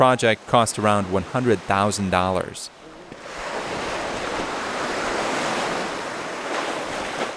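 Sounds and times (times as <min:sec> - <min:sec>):
speech: 0:00.0 - 0:02.8
ocean waves crashing against a rocky boulder shoreline: 0:00.0 - 0:07.3
gusty wind: 0:02.7 - 0:07.3.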